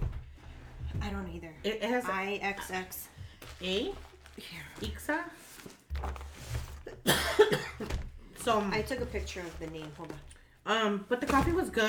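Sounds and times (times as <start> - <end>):
speech: 1.1 - 6.2, 8.4 - 11.8
person with a lingering cough coughing: 6.9 - 8.0.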